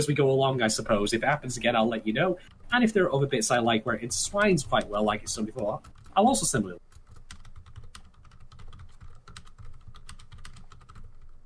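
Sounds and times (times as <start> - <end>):
speech: 0.0 - 6.8
low hum: 0.0 - 11.4
rapid typing on a computer keyboard while writing in a chat: 4.4 - 11.4.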